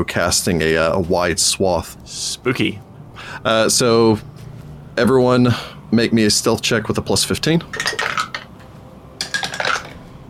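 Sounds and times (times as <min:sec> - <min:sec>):
speech: 0:00.0 - 0:04.3, 0:05.0 - 0:08.0
dice clattering and rattling across a hard table surface: 0:07.7 - 0:08.5, 0:09.2 - 0:10.0.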